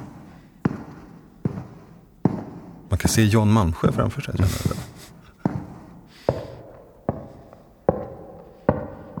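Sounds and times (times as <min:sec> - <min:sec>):
footsteps on carpet in a church: 0:00.0 - 0:09.1
laughter: 0:02.9 - 0:05.5
speech: 0:03.0 - 0:05.2.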